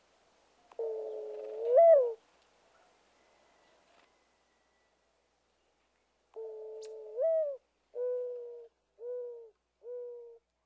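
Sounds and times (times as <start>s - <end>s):
mourning dove coo: 0.7s - 2.2s, 6.4s - 10.4s.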